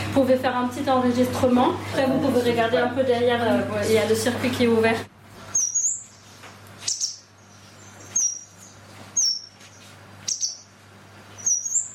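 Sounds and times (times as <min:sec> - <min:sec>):
speech: 0:00.2 - 0:05.2
blue tit chirping calls: 0:05.5 - 0:11.9.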